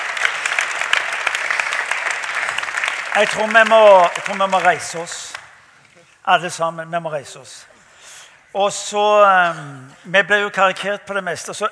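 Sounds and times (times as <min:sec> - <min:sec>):
audience applause from a sizable audience: 0:00.0 - 0:05.4
speech: 0:03.2 - 0:05.2, 0:06.3 - 0:07.8, 0:08.5 - 0:11.7.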